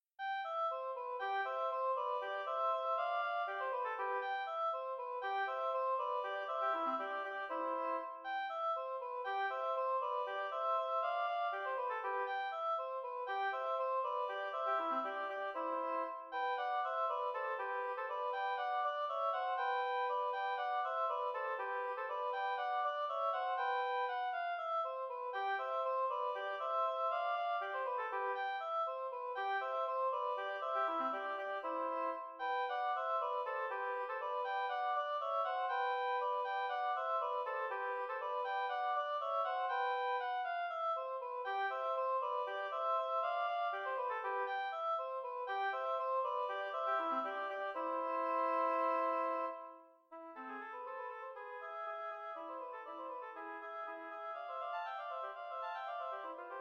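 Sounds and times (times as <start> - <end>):
oboe duet: 0.2 - 56.5.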